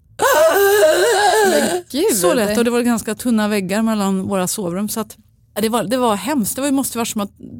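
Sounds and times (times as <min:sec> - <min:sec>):
person vocally imitating a sleeper's gasp after a sleep apnea pause: 0:00.2 - 0:01.9
speech: 0:01.9 - 0:07.5.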